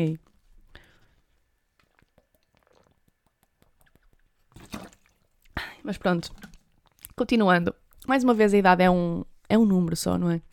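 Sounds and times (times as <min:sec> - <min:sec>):
speech: 0:00.0 - 0:00.2, 0:05.8 - 0:06.5, 0:07.2 - 0:10.5
person drinking water: 0:00.7 - 0:07.2
liquid sloshing: 0:00.8 - 0:07.2.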